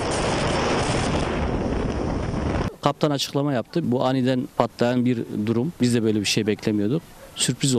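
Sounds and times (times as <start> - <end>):
storm wind buffeting the microphone on a sea bus: 0.0 - 2.9
speech: 2.8 - 7.7.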